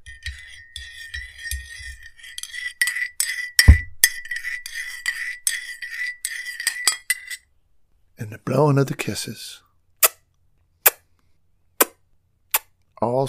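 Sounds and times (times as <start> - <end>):
spoon stirring coffee in a cup: 0.0 - 7.5
speech: 8.2 - 9.6, 13.0 - 13.2.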